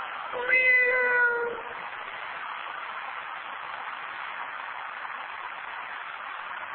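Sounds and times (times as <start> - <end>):
voice imitating a weak sickly cat meow: 0.4 - 1.8.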